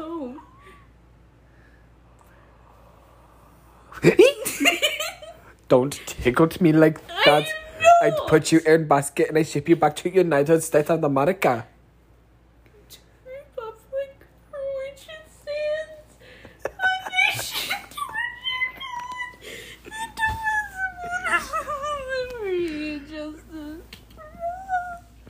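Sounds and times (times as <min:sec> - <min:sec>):
speech: 0:04.0 - 0:04.7, 0:05.7 - 0:11.7
whimpering crying-like moans: 0:17.8 - 0:25.2.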